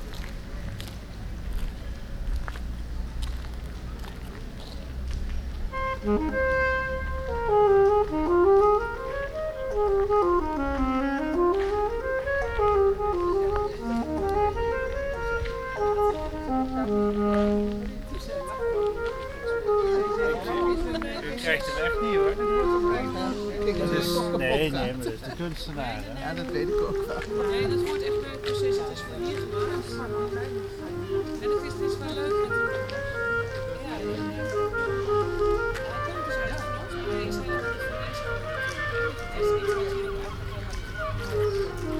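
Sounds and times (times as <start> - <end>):
busy outdoor murmur at an open-air sculpture exhibition: 0.0 - 41.9
low traffic rumble: 0.0 - 41.9
melodic tune with rising and falling notes: 5.7 - 25.3, 26.2 - 40.4.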